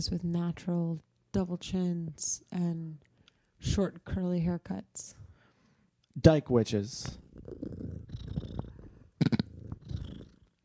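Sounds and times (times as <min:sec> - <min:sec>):
speech: 0:00.0 - 0:05.2, 0:06.2 - 0:07.8
cat purring: 0:07.0 - 0:10.6.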